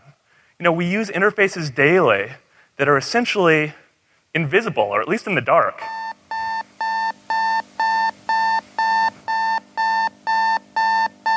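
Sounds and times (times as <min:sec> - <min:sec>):
speech: 0:00.6 - 0:06.0
alarm clock wake-up alarm electronic beeping: 0:05.9 - 0:11.3.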